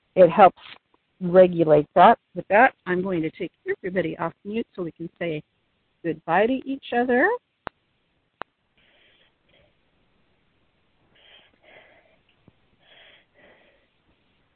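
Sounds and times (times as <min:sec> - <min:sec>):
speech: 0:00.2 - 0:07.5
soft raspy breaths over an open line: 0:08.8 - 0:09.9, 0:11.0 - 0:14.1.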